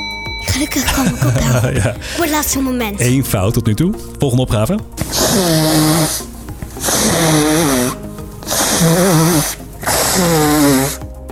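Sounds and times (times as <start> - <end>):
speech: 0.5 - 8.0, 8.8 - 11.0
laughter: 0.8 - 2.2
person blowing nose: 5.1 - 11.0.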